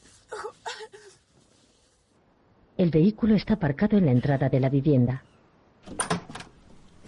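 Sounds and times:
speech: 0:02.8 - 0:05.3
door latch clunk: 0:05.9 - 0:06.6.

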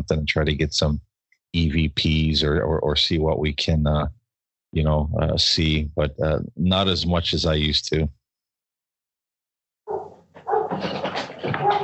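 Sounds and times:
speech: 0:00.0 - 0:08.2
big dog barking: 0:09.9 - 0:11.8.

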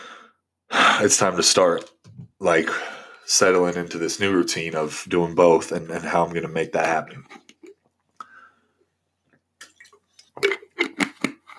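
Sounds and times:
speech: 0:01.0 - 0:07.4
person drinking water: 0:07.2 - 0:08.5, 0:09.6 - 0:11.5.

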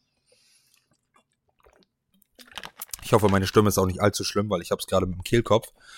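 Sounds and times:
person sipping a drink: 0:00.2 - 0:03.0
swallowing: 0:00.6 - 0:02.6
slurping gulp: 0:00.6 - 0:03.0
speech: 0:03.1 - 0:05.9.

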